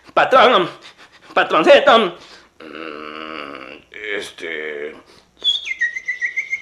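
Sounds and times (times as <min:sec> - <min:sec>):
speech: 0:00.2 - 0:02.9, 0:04.2 - 0:05.1
dazed groaning voice: 0:02.6 - 0:05.0.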